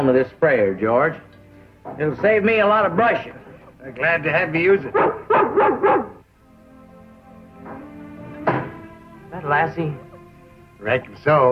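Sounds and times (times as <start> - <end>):
speech: 0.0 - 6.1, 9.4 - 10.1, 10.8 - 11.5
dog barking: 4.9 - 6.2.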